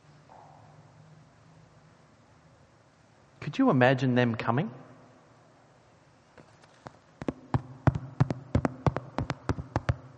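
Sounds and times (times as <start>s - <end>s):
speech: 3.5s - 4.8s
knocking on a door: 7.2s - 10.1s.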